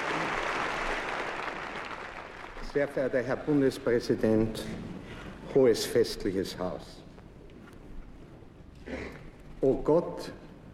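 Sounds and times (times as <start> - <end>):
audience applauding at a formal ceremony: 0.0 - 2.9
speech: 2.8 - 4.9, 5.5 - 7.0, 9.6 - 10.4.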